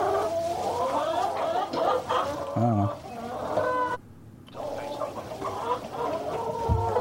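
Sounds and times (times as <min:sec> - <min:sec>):
flock of chickens clucking and chattering: 0:00.0 - 0:07.0
speech: 0:02.0 - 0:03.0.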